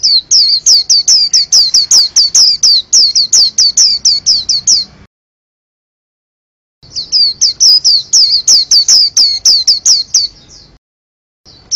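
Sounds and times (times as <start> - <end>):
white-eye singing sharp high down-slurred chirps: 0.0 - 5.1, 6.8 - 10.8, 11.5 - 11.7.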